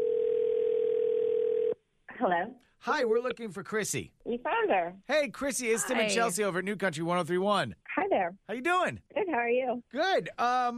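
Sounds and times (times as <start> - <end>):
steady telephone tone as a call goes through: 0.0 - 1.8
speech: 2.2 - 10.7.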